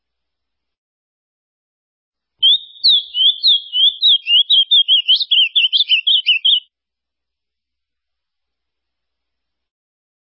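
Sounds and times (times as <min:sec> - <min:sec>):
Ultramarine grosbeak warbled song: 0:02.4 - 0:06.7.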